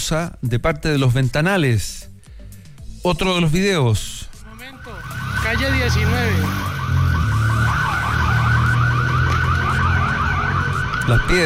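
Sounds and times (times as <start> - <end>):
speech: 0.0 - 2.1, 3.0 - 4.3, 4.9 - 7.0, 11.1 - 11.4
car alarm warbling: 4.4 - 11.4.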